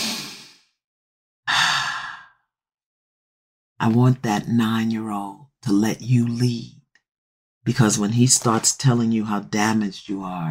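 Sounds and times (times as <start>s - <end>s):
deep breathing in and out: 1.5s - 2.4s
speech: 3.8s - 6.8s, 7.6s - 10.4s.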